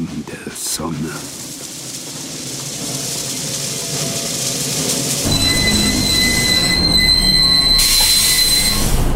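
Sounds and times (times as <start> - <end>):
heavy rumbling roar of a braking train: 0.0 - 9.1
speech: 0.8 - 1.4
train wheels squealing while braking: 1.7 - 9.1.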